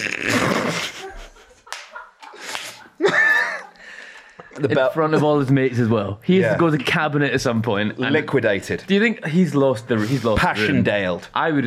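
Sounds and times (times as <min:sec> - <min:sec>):
laughter: 0:00.5 - 0:05.5
loud sharp slaps with a fleshy snap: 0:01.7 - 0:02.8
speech: 0:04.6 - 0:11.6.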